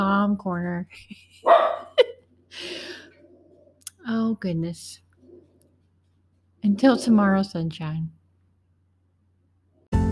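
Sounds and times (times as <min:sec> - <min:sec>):
speech: 0:00.0 - 0:01.6, 0:04.0 - 0:05.0, 0:06.6 - 0:08.2
dog barking: 0:01.4 - 0:02.0.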